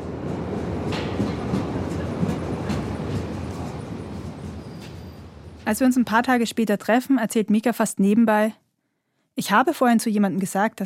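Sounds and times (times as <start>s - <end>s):
faint rhythmic clacks: 0.0s - 4.9s
subway train pulling into a station in Vienna: 0.0s - 6.6s
speech: 5.7s - 8.6s, 9.4s - 10.8s.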